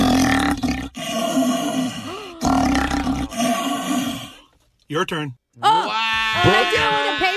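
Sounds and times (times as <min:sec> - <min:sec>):
person imitating a lion roar through an empty paper towel roll: 0:00.0 - 0:04.4, 0:05.6 - 0:07.3
speech: 0:04.9 - 0:07.3.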